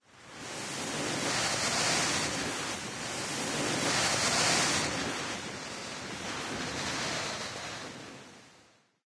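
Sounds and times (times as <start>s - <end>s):
wind in forest trees: 0.0s - 8.9s.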